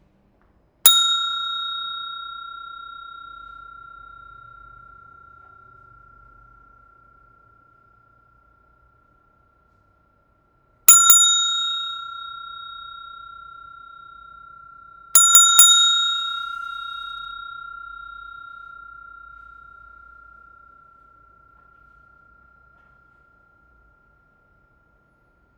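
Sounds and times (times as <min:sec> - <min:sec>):
hotel bell: 0:00.8 - 0:25.5.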